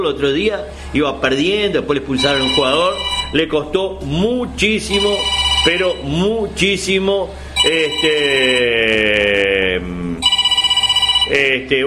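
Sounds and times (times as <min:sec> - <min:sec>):
speech: 0:00.0 - 0:10.2, 0:11.3 - 0:11.8
telephone ringing with a rapid buzzing pulsed trill: 0:02.2 - 0:03.5, 0:04.8 - 0:06.2, 0:07.6 - 0:09.4, 0:10.2 - 0:11.5.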